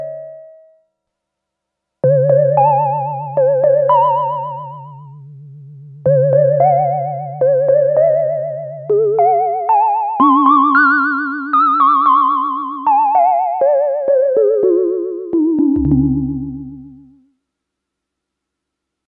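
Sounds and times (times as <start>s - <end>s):
delay vibrato effect: 2.0s - 17.3s.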